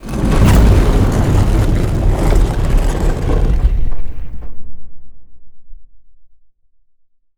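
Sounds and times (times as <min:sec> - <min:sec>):
big door opening at an archeology event: 0:00.0 - 0:04.4.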